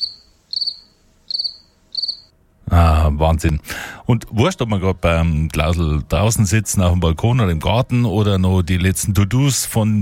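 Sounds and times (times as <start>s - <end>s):
crickets chirping outdoors on a warm summer night through an open window: 0.0s - 2.3s
faint low background: 0.0s - 10.0s
speech: 2.8s - 10.0s.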